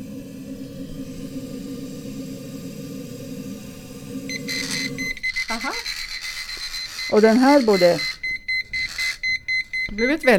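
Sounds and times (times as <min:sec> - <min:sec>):
low hum of liquid pouring into a cup: 0:00.0 - 0:06.1
rattling vibration: 0:00.0 - 0:10.3
liquid level alarm beeping as cup fills: 0:04.3 - 0:10.3
speech: 0:05.5 - 0:06.0, 0:07.1 - 0:08.1, 0:10.0 - 0:10.3.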